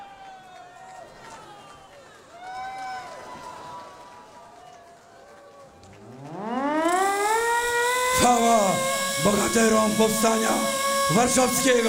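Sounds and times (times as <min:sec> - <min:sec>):
siren sounding at a Warsaw Uprising commemoration: 0:05.9 - 0:11.8
speech: 0:08.2 - 0:11.8.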